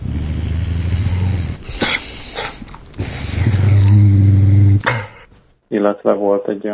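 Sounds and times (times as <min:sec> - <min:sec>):
dog growling: 0:00.0 - 0:05.3
speech: 0:05.8 - 0:06.7.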